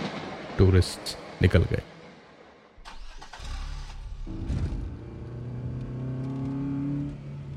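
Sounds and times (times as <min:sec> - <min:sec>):
speech: 0:00.6 - 0:01.9
car engine starting and driving off: 0:02.8 - 0:07.5.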